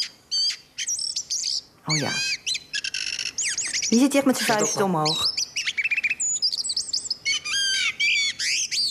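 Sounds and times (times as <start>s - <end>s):
male blackbird singing a rivalry song: 0.0s - 8.9s
speech: 1.9s - 2.4s, 3.9s - 5.4s.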